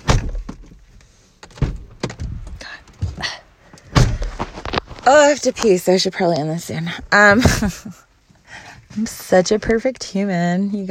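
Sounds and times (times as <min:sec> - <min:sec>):
door being closed with heavy thunks and clattering knocks: 0:00.0 - 0:00.7, 0:01.5 - 0:03.2, 0:03.9 - 0:04.4
speech: 0:05.1 - 0:08.0, 0:09.0 - 0:10.8.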